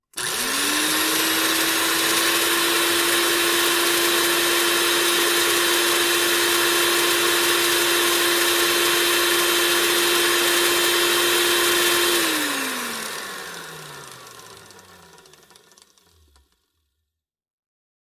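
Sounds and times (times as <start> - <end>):
blender running: 0.0 - 16.6.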